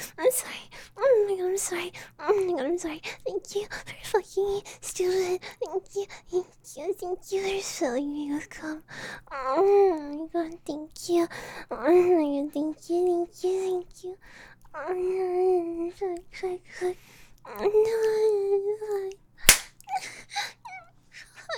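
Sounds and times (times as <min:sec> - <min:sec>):
speech: 0:01.6 - 0:20.6
slap on skin: 0:19.5 - 0:19.8.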